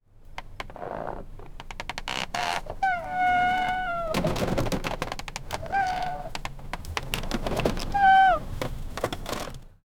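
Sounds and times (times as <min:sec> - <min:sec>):
wooden boats creaking: 0:02.7 - 0:09.6.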